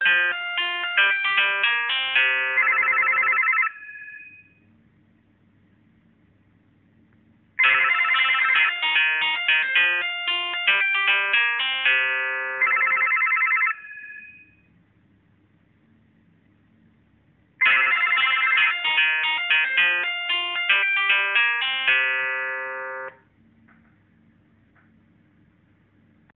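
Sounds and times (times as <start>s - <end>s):
school telephone ringing: 0.0s - 4.6s, 7.6s - 14.6s, 17.6s - 23.2s.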